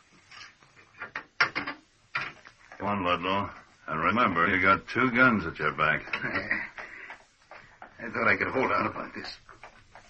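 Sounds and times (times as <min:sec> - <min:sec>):
quiet scrape of heavy prison cell door lock: 0:00.0 - 0:00.6
speech: 0:02.8 - 0:06.7, 0:08.0 - 0:09.5.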